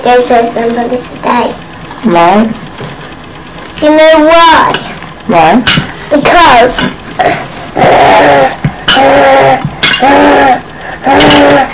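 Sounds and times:
speech: 0.0 - 3.0, 3.8 - 11.7
person clearing throat: 7.2 - 11.7.

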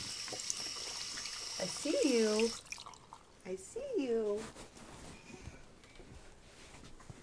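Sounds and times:
hands being washed under running tap water: 0.0 - 3.2
speech: 1.6 - 2.7, 3.4 - 4.7.

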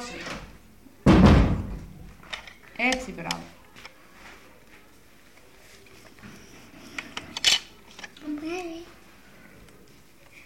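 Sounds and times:
door shutting with a thud: 0.2 - 2.1
speech: 2.8 - 3.6.

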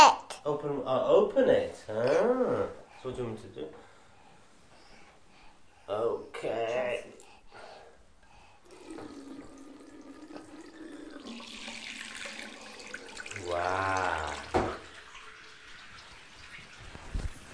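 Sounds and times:
speech: 0.4 - 3.9, 5.9 - 7.2, 13.4 - 14.6
water running from a tap: 8.7 - 17.0.

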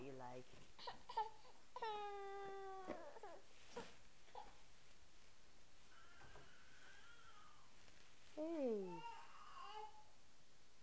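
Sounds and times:
speech: 0.2 - 2.7
fussy baby boy crying: 0.8 - 4.6, 6.0 - 7.7, 8.9 - 10.1.

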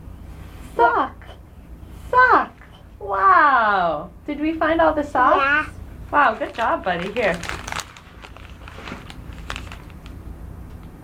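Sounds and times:
speech: 0.8 - 1.2, 3.1 - 7.5
child taking a big bite of food: 6.4 - 10.2.

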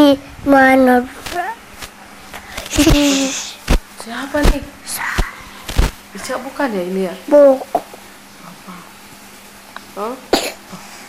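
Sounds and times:
speech: 0.1 - 1.2, 2.7 - 5.1, 6.2 - 7.9, 10.0 - 10.8
short voiced sounds: 2.7 - 3.7
sharp cough: 10.3 - 10.6.

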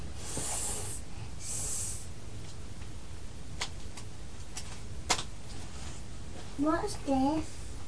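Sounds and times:
snake hissing: 0.2 - 2.1
speech: 6.6 - 7.6.

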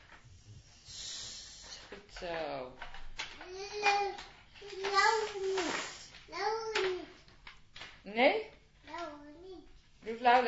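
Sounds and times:
child imitating a snake's hiss: 0.8 - 1.8, 5.4 - 6.1
speech: 2.1 - 7.0, 8.0 - 8.6, 10.0 - 10.4.

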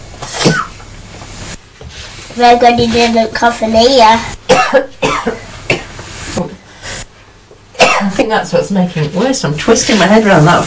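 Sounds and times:
person coughing: 0.3 - 0.8, 4.5 - 5.9, 7.8 - 8.2
speech: 2.4 - 5.4, 8.3 - 10.6.

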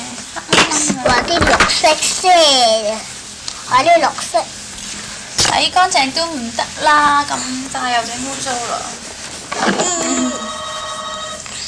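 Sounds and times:
speech: 1.0 - 3.1, 3.7 - 4.6, 5.5 - 9.0, 9.6 - 10.4
telephone ringing with bright electronic tone: 9.8 - 11.6.

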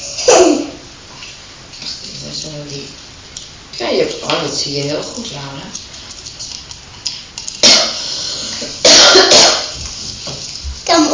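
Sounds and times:
speech: 3.9 - 5.9
person coughing: 7.6 - 9.8.

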